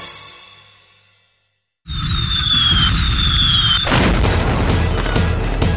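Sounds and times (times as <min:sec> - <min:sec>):
rising and falling fireworks whistles at night: 0:01.9 - 0:05.1
fireworks booming bursts at night: 0:02.2 - 0:05.6.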